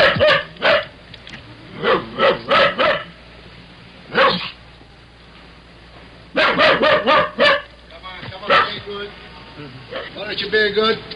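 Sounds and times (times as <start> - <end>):
dog locked in a car barking: 0.0 - 0.9, 1.8 - 3.1, 4.1 - 4.6, 6.3 - 7.7, 8.5 - 8.8.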